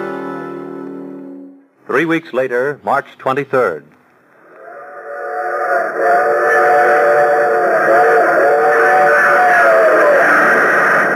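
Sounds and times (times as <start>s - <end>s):
train whistle in a long wavering wail: 0.0s - 1.7s, 4.6s - 11.0s
speech: 1.9s - 4.0s.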